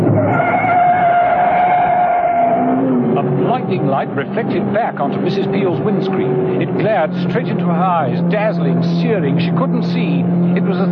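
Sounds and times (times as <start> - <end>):
car tires squealing in a long skid: 0.0 - 3.1
speeding car engine rumbling on an open road: 0.0 - 10.9
speech: 3.7 - 10.9.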